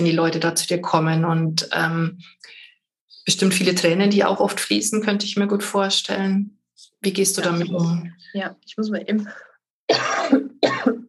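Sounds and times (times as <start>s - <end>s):
speech: 0.0s - 2.6s, 3.2s - 10.2s
person coughing forcefully: 9.9s - 11.0s.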